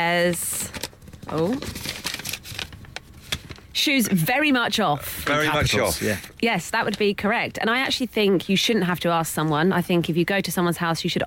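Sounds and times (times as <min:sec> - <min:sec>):
speech: 0:00.0 - 0:00.6, 0:01.3 - 0:02.0, 0:03.8 - 0:11.2
folded sheet of paper crinkling as it is unfolded: 0:00.2 - 0:03.7.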